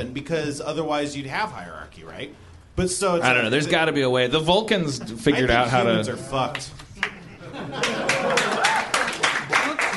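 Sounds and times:
speech: 0.0 - 6.8
audience clapping: 6.5 - 9.9
people laughing: 7.2 - 9.9.

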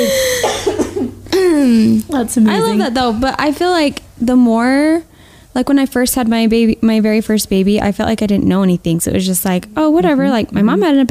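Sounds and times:
person coughing: 0.0 - 1.8
speech: 2.1 - 11.0.

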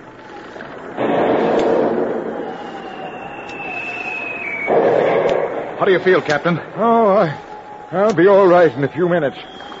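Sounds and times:
submarine deck gun shots and explosion sound effect: 1.0 - 2.4, 4.6 - 5.8
thin descending whistle: 1.5 - 5.6, 7.4 - 9.7
speech: 5.8 - 9.7.

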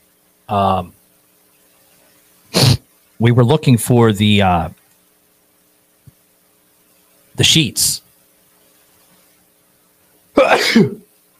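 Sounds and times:
speech: 0.5 - 1.0, 3.2 - 4.8, 7.4 - 8.0, 10.4 - 11.0
person sneezing after holding it back: 2.5 - 2.8, 10.4 - 11.1.

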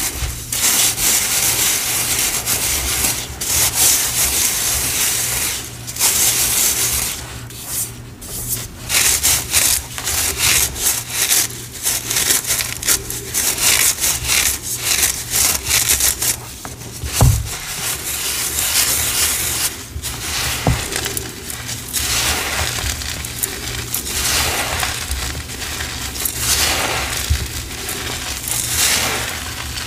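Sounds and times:
sifting and mixing green cornstarch and gym chalk powder: 0.0 - 29.8
soft low knock: 17.0 - 17.8.

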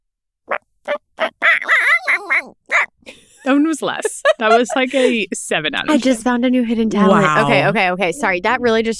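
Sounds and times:
person imitating a chicken with clucks and squawk: 0.9 - 2.9
laughter: 3.1 - 5.4
speech: 3.7 - 8.9.

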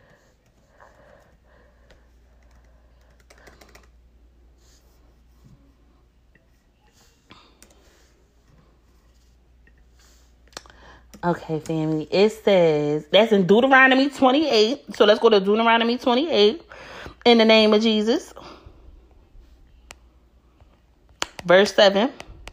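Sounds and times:
low hum: 0.0 - 22.5
typing on a laptop keyboard with one hand: 1.9 - 4.0
speech: 11.2 - 16.6, 17.2 - 18.4, 21.5 - 22.2.

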